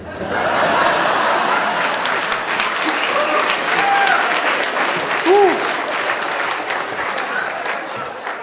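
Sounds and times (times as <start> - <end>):
laughter: 0.0 - 8.4
sustained applause from a sizable audience: 0.4 - 8.4
whoops: 2.9 - 4.5, 5.2 - 5.8.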